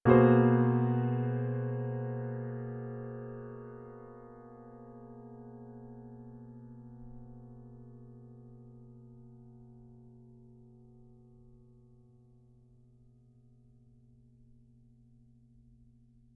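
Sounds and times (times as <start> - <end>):
dissonant piano: 0.0 - 13.0.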